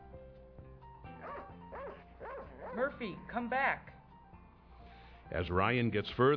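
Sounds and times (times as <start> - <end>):
faint dog barks: 1.1 - 3.0
dog whining yelps: 1.2 - 2.9
speech: 2.8 - 3.9, 5.3 - 6.3.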